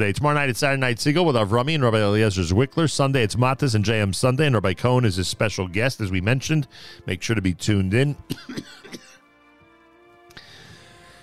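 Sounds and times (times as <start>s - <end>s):
speech: 0.0s - 8.8s
person clearing their throat: 8.3s - 9.2s
person coughing: 8.3s - 9.2s.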